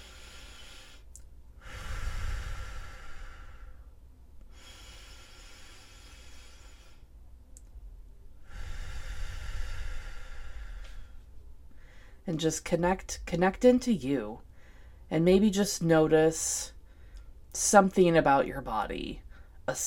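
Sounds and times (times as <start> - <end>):
deep slow breathing during guided relaxation: 0.0 - 7.2, 8.4 - 12.2, 14.5 - 15.1, 16.8 - 17.4
speech: 12.3 - 14.4, 15.1 - 16.8, 17.5 - 19.8.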